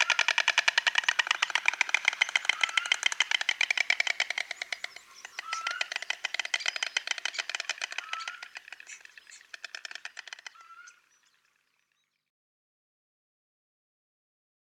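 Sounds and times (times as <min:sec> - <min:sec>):
white stork clattering its bill: 0:00.0 - 0:11.4.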